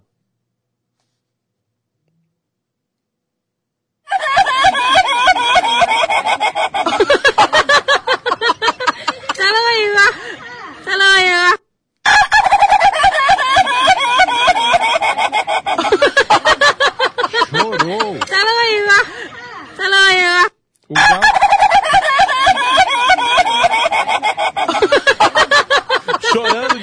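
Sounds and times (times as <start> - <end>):
rooster crowing: 4.1 - 8.4, 12.1 - 16.3, 21.0 - 25.7
laughter: 4.1 - 11.5, 12.1 - 26.8.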